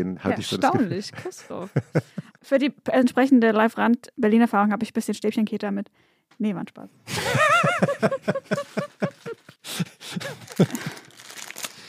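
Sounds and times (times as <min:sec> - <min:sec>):
speech: 0:00.0 - 0:10.9
laughter: 0:00.3 - 0:02.4, 0:07.1 - 0:11.0
crinkly plastic snack packaging rustling: 0:08.5 - 0:09.5, 0:10.2 - 0:11.8.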